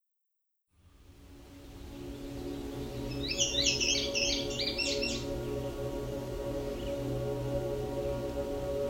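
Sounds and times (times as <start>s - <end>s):
indigo bunting singing: 2.1s - 8.4s.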